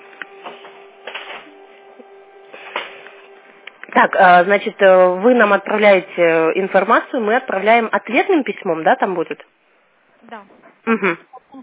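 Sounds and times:
printer running: 0.0s - 7.9s
speech: 4.0s - 9.6s, 10.3s - 11.6s.

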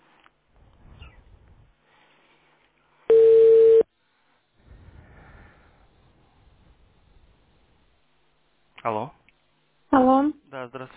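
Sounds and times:
faint low noise: 0.0s - 10.9s
telephone line beep while connecting a callback: 3.1s - 3.8s.

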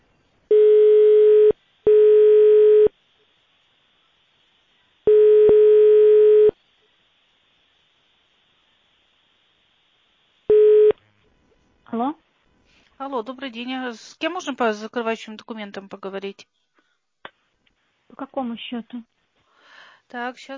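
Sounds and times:
telephone line tones while a call waits to connect: 0.5s - 2.9s, 5.1s - 6.6s
speech: 13.1s - 16.7s, 18.2s - 19.2s, 20.1s - 20.5s.

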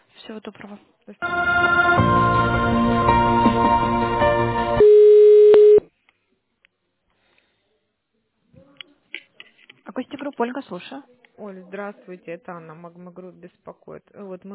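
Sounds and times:
speech: 0.3s - 3.9s, 10.4s - 14.5s
single loud steady phone-line tone: 1.2s - 2.2s, 4.8s - 5.9s.

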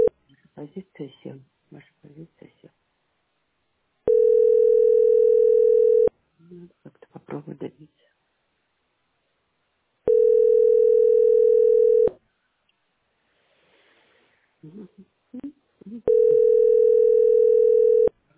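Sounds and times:
speech: 0.6s - 2.8s, 6.5s - 8.1s, 14.6s - 16.8s
telephone ringback tone while a call connects: 4.1s - 6.1s, 10.1s - 12.1s, 16.1s - 18.1s.

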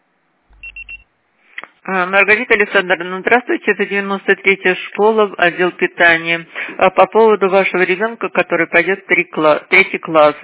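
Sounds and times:
steady low hum: 0.4s - 1.0s
voicemail beep of three short high-pitched electronic tones: 0.5s - 1.1s
speech: 1.8s - 10.4s.

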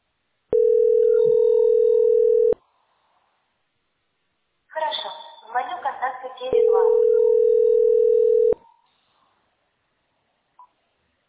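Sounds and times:
telephone ringback tone while calling: 0.5s - 2.6s, 6.5s - 8.6s.

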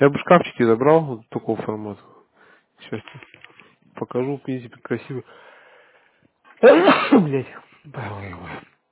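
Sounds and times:
speech: 0.0s - 2.2s, 2.9s - 5.5s, 6.6s - 8.7s
person sneezing: 6.6s - 7.5s.

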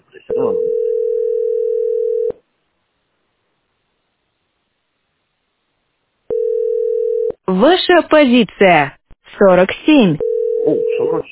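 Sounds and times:
telephone ringing tone from an unanswered incoming call: 0.3s - 2.4s, 6.3s - 7.4s, 10.2s - 11.1s
speech: 7.5s - 11.3s.

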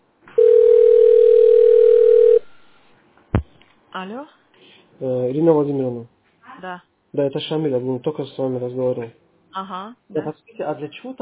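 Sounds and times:
telephone tone while dialing an extension number: 0.4s - 2.4s
speech: 4.0s - 4.4s, 5.0s - 11.2s.

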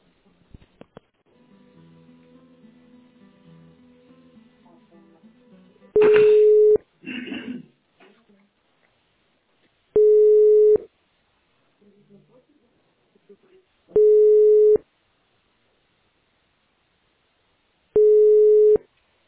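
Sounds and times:
telephone beep while a call is placed: 6.0s - 6.8s, 10.0s - 10.8s, 14.0s - 14.8s, 18.0s - 18.8s.

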